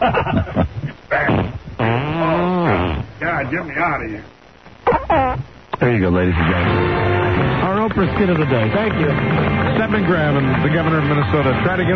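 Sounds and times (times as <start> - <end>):
speech: 0.0 - 0.2, 3.5 - 4.4, 5.8 - 11.9
laughter: 0.0 - 1.3
fart sound effect: 0.8 - 3.1, 4.8 - 5.5.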